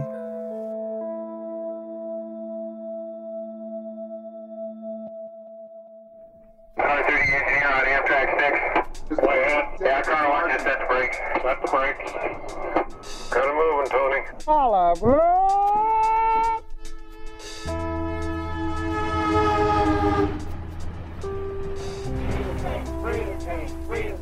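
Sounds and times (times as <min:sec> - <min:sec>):
passenger train running: 0:06.8 - 0:14.4, 0:17.7 - 0:24.1
speech: 0:07.3 - 0:15.6
rising swooping tones: 0:15.0 - 0:24.1
passenger train horn blasts: 0:17.7 - 0:24.1.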